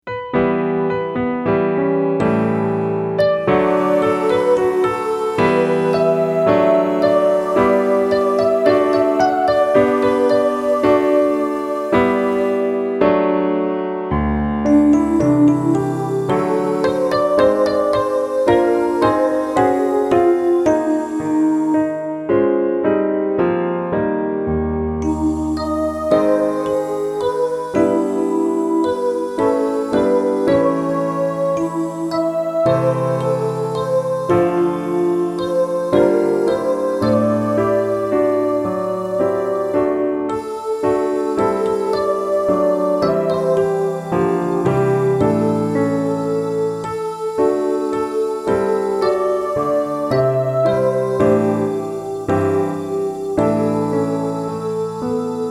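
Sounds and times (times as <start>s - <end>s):
piano study: 0.0s - 55.5s.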